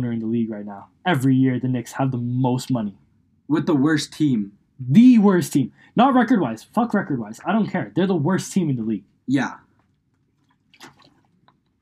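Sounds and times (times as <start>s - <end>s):
speech: 0.0s - 9.6s
sipping water: 10.4s - 11.6s
swallowing: 10.4s - 11.6s.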